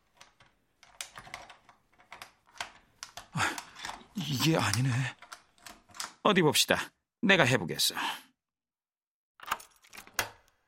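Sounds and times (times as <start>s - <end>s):
keys fumbling in a door lock: 0.0s - 6.2s, 9.4s - 10.4s
speech: 4.3s - 5.2s, 6.2s - 8.2s.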